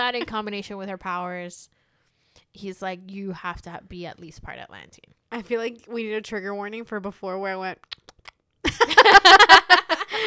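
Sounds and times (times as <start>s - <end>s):
speech: 0.1s - 1.8s, 2.4s - 8.1s
soft mouth clicks imitating chewing and tasting: 7.8s - 8.4s
rhythmic voiced smacking and humming mouth noises: 7.8s - 8.6s
laughter: 8.7s - 10.2s.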